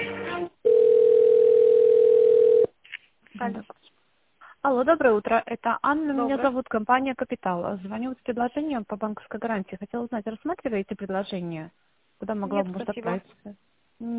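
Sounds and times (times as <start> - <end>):
telephone ringing tone while a call is transferred: 0.6 - 2.7
speech: 4.7 - 14.1.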